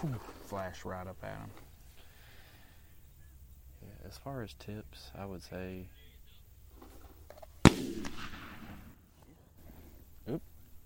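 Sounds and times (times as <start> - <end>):
speech: 0.0 - 1.7, 4.0 - 6.0, 10.3 - 10.5
shotgun blast fired during a dove hunt: 7.6 - 9.0.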